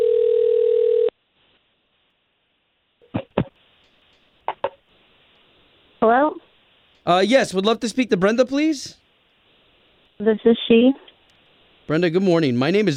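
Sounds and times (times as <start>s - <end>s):
telephone dial tone while a call is placed: 0.0s - 1.1s
speech: 6.0s - 6.4s, 7.0s - 9.0s, 10.2s - 11.0s, 11.9s - 12.9s.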